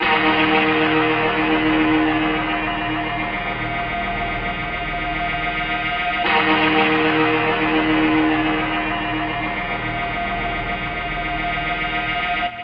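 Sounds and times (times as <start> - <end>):
guitar playing: 0.0 - 12.0.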